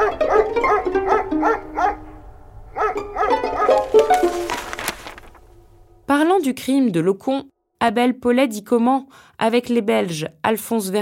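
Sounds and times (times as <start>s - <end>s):
dogs barking during an attempted burglary at a railway train chief's home: 0.0s - 4.0s
speech: 6.4s - 11.0s.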